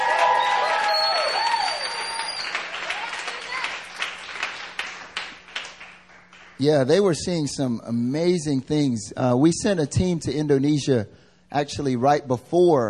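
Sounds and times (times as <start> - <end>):
audience applause: 0.0 - 6.6
speech: 6.6 - 12.8.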